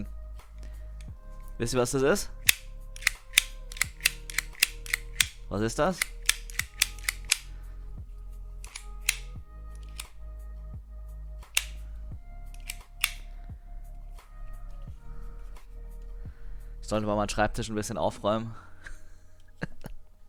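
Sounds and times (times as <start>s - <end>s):
low steady hum: 0.0s - 20.2s
speech: 1.6s - 2.4s, 5.5s - 6.2s, 16.9s - 18.7s
cable stripping tool clicking on a desk: 2.4s - 7.5s, 8.6s - 10.2s, 11.5s - 11.9s, 12.5s - 13.3s.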